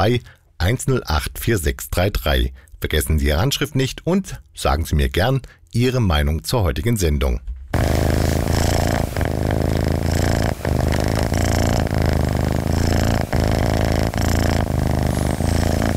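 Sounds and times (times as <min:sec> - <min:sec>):
speech: 0:00.0 - 0:08.0
relaxed cat purring loudly: 0:07.8 - 0:15.9.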